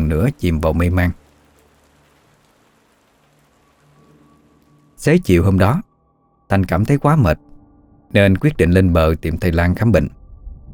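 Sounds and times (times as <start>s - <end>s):
sudden rain pattering on a domed roof: 0.0s - 5.9s
speech: 0.1s - 1.2s, 5.0s - 5.9s, 6.5s - 7.5s, 8.1s - 10.2s.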